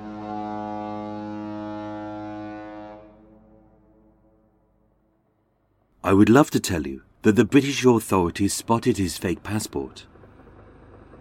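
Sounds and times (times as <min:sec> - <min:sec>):
deep ship's horn blast: 0:00.0 - 0:05.4
speech: 0:06.0 - 0:10.1.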